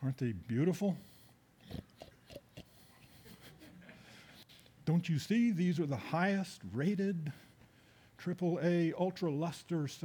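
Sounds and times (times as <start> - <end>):
speech: 0.0 - 1.1, 4.9 - 7.5, 8.2 - 10.0
voice imitating pigs grunting and oinking: 1.6 - 2.9.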